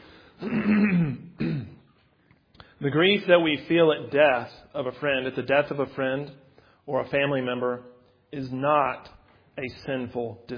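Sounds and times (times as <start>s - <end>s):
throat clearing: 0.4s - 2.0s
speech: 2.8s - 10.5s.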